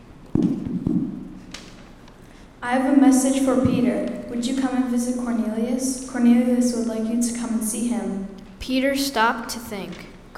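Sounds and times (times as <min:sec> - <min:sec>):
dull hollow knocking on a door: 0:00.4 - 0:01.3
speech: 0:02.6 - 0:10.1.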